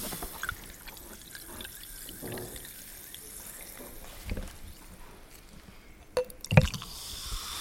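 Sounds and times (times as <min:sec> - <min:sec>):
water pouring into a glass: 0:00.1 - 0:04.9, 0:06.2 - 0:07.5.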